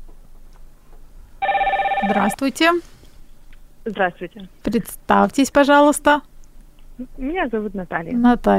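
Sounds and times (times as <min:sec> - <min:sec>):
telephone on a radio call-in line ringing with an electronic trill: 0:01.4 - 0:02.6
speech: 0:02.0 - 0:02.9, 0:03.9 - 0:06.3, 0:07.0 - 0:08.5.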